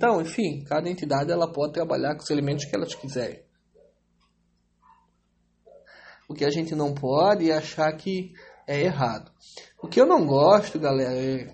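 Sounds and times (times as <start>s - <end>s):
speech: 0.0s - 3.5s, 6.3s - 11.5s
low steady hum: 0.0s - 11.5s
faint dog barks: 2.6s - 4.0s.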